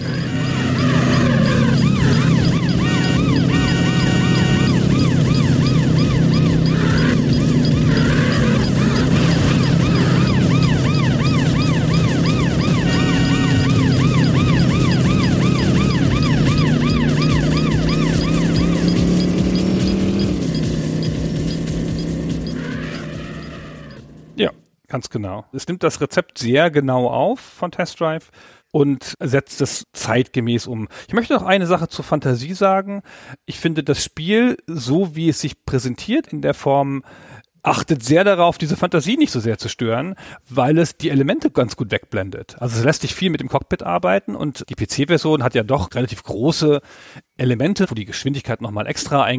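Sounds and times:
luxury sports car engine roaring in a racing video game: 0.0 - 24.4
police sirens wailing in a racing video game: 0.0 - 24.5
speech: 25.0 - 49.3.

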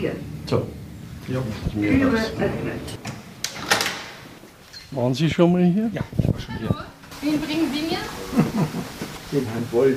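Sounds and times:
speech: 0.0 - 3.1, 4.9 - 9.9
elevator sliding door rolling and bumping shut: 1.8 - 4.3
laughter: 8.2 - 9.2.

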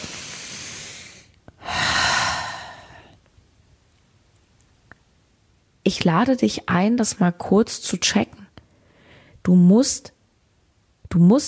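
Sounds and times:
deep breathing in and out: 0.0 - 3.2
speech: 5.9 - 8.4, 9.5 - 10.2, 11.1 - 11.4.

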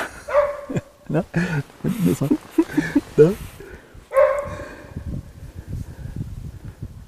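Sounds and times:
laughter: 0.0 - 3.6
dog yipping and barking: 0.3 - 0.9, 4.1 - 4.6
speech: 1.1 - 3.5
faint rustling and movement: 1.5 - 4.2.

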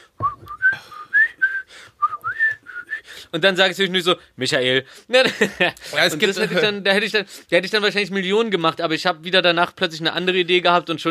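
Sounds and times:
person whistling a short lively melody: 0.2 - 3.1
speech: 3.3 - 11.0
laughter: 5.2 - 6.8.

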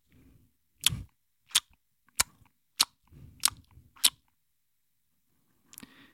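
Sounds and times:
elderly woman making wet lip-smacking noises at a baby: 0.8 - 4.3.

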